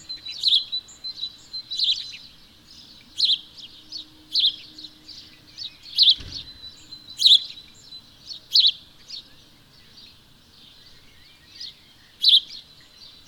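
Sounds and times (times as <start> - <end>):
house sparrow Passer domesticus giving sharp chirps: 0.0 - 13.2
brief low thump: 6.1 - 6.7.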